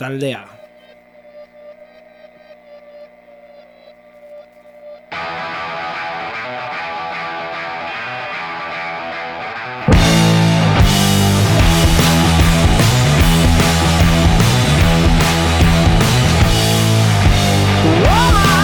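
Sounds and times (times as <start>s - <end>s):
speech: 0.0s - 0.6s
hard rock song by Australian band: 5.1s - 18.6s
sliding distorted guitar bend: 5.1s - 18.6s.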